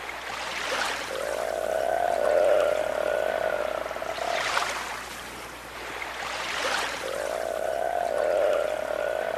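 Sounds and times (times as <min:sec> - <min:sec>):
soft surf washing in on the northern French coast: 0:00.0 - 0:09.3
seals calling on the northern French coast: 0:01.1 - 0:05.2, 0:07.0 - 0:09.3.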